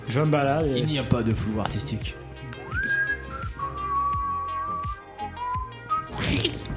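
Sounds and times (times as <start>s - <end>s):
speech: 0.1s - 2.2s
person whistling a wavering tune: 2.6s - 6.2s.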